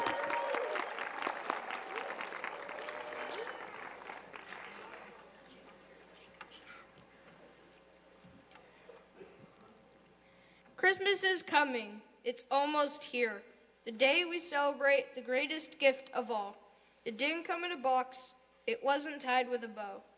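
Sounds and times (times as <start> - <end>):
audience applause: 0.0 - 5.8
speech: 10.8 - 20.1.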